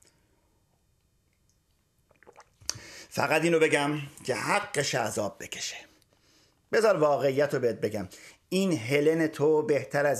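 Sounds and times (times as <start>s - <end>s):
person sipping and slurping water: 1.4s - 3.1s
person gulping water: 2.1s - 3.1s
speech: 3.1s - 5.9s, 6.7s - 10.1s.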